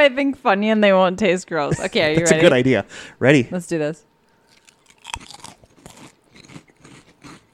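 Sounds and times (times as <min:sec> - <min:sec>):
speech: 0:00.0 - 0:04.1
crunching and chewing shrimp-flavored onion-like snack chips: 0:04.4 - 0:07.5.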